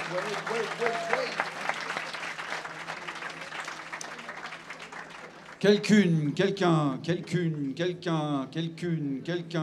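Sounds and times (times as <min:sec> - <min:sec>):
crowd applause: 0:00.0 - 0:05.6
speech: 0:00.1 - 0:01.8, 0:05.6 - 0:09.6.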